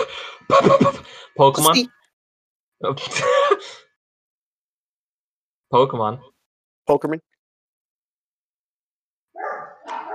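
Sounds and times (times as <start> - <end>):
speech: 0.5 - 2.0, 2.8 - 3.8, 5.7 - 6.3, 6.9 - 7.3
dog barking loudly: 9.3 - 10.1.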